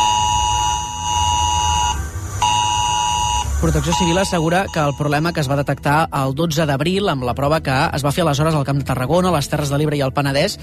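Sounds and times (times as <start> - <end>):
mobile phone emergency alarm electronic alert tone: 0.0 - 5.5
speech: 3.6 - 10.6.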